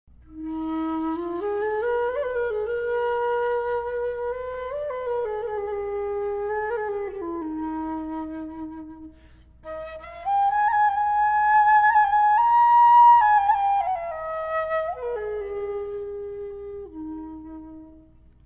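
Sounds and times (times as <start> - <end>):
Arabian flute playing: 0.3 - 18.3.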